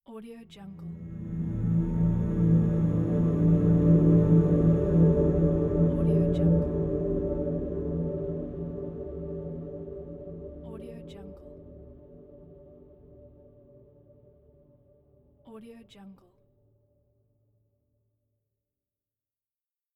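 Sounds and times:
harmonic ambience: 0.8 - 14.9.

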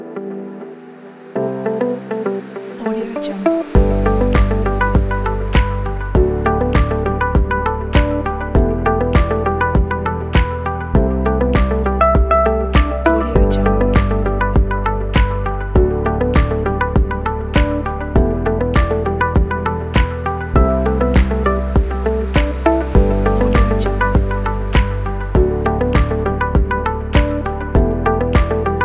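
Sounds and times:
clean positive corporate music: 0.8 - 28.8.

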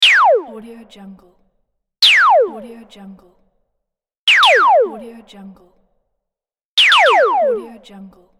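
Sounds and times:
laser gun: 4.3 - 4.8, 6.8 - 7.6.

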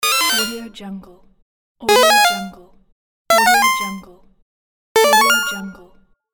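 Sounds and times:
8-bit game pause sound: 0.0 - 0.7, 1.9 - 2.5, 3.3 - 4.0, 5.0 - 5.8.

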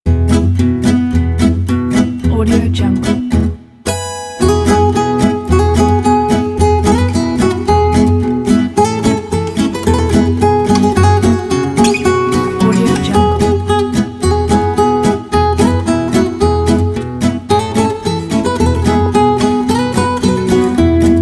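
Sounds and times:
acoustic guitars playing: 0.1 - 21.2.

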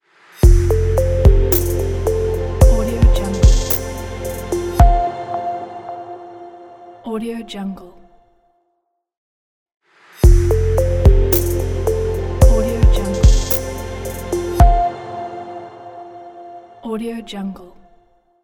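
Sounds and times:
ambient logo jingle: 0.4 - 6.8, 10.3 - 16.6.

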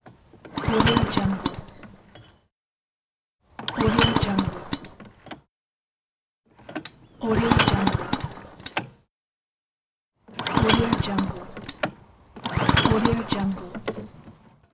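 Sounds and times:
gasoline lawn mower failing to start: 0.4 - 2.4, 3.5 - 5.4, 6.6 - 8.9, 10.3 - 14.6.

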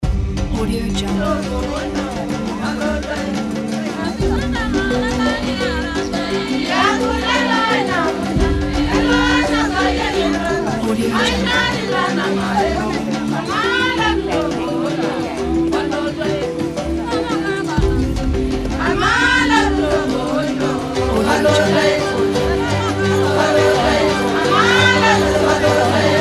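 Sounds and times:
African tribal voices ident: 0.0 - 26.1.

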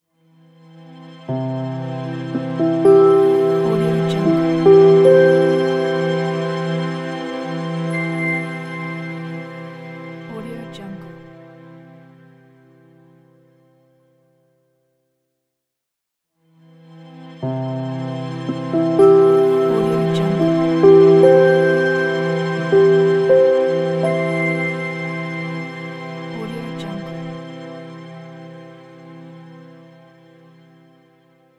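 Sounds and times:
elegant piano logo jingle: 1.3 - 11.7, 17.4 - 29.5.

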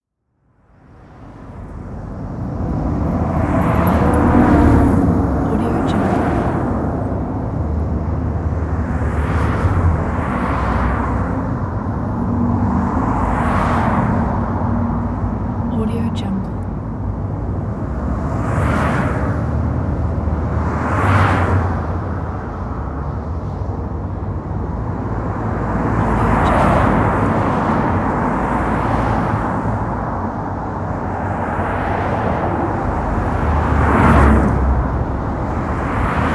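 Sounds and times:
city ambience traffic: 0.1 - 36.3.

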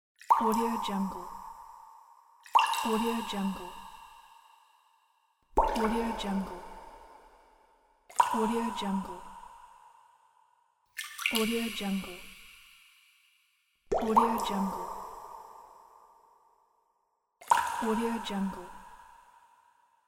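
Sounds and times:
water drop with reverb: 0.2 - 4.6, 5.5 - 9.9, 11.0 - 13.2, 13.9 - 16.2, 17.4 - 19.3.

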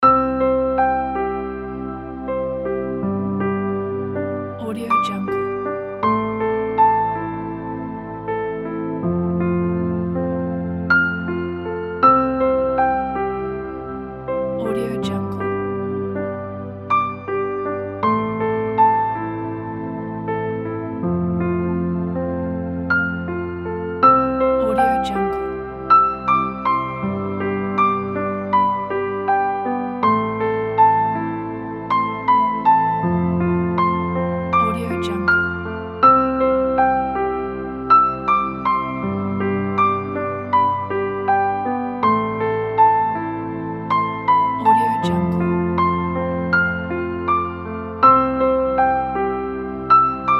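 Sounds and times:
romantic piano music: 0.0 - 50.3
atmospheric background: 4.6 - 5.9, 14.4 - 16.0, 24.4 - 25.9, 34.6 - 35.7, 44.6 - 45.8.

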